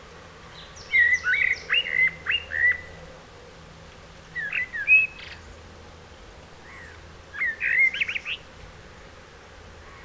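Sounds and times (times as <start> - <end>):
common blackbird Turdus merula song: 0.5 - 3.0, 4.3 - 5.7, 6.4 - 8.5.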